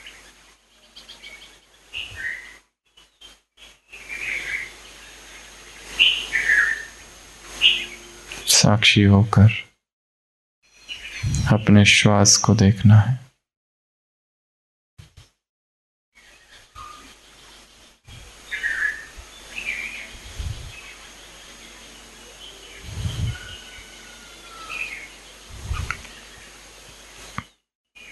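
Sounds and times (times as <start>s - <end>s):
birds chirping and singing: 0.0s - 8.6s, 10.7s - 11.9s, 16.2s - 28.0s
faint outdoor background: 0.0s - 9.8s, 10.6s - 13.3s, 16.1s - 28.0s
speech: 8.7s - 9.7s, 11.5s - 13.2s
soft low rumbling bursts: 22.8s - 23.6s, 25.4s - 26.2s.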